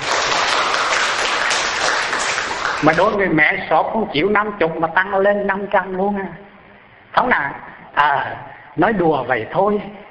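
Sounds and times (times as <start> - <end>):
audience applause at a retreat: 0.0 - 3.2
speech: 2.8 - 6.4, 7.2 - 10.0.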